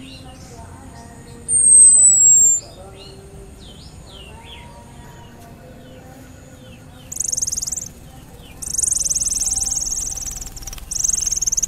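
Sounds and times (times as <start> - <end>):
faint soft chirps: 0.0 - 11.6
Orange-headed thrush buzzing rattle call: 7.1 - 11.6.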